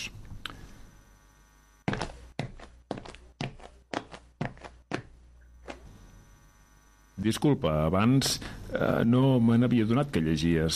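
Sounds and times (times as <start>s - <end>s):
footsteps walking across a floor: 1.8s - 5.9s
speech: 7.2s - 10.7s.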